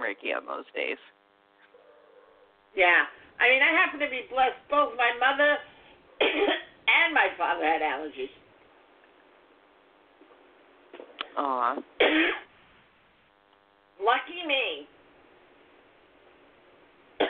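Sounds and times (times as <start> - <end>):
steady electrical hum: 0.0 - 17.2
speech: 0.2 - 1.2, 2.8 - 8.4, 11.4 - 12.5, 14.0 - 14.9
person having a coughing attack: 6.2 - 6.7, 12.0 - 12.5.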